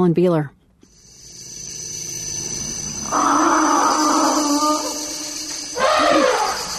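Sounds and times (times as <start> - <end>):
speech: 0.0 - 0.6
steady high insect-like hum: 0.8 - 6.7
elephant long loud groaning call at a marsh in the Central African Republic: 2.4 - 6.7
elephant shorter rumbling cry at a marsh in the Central African Republic: 3.0 - 6.7.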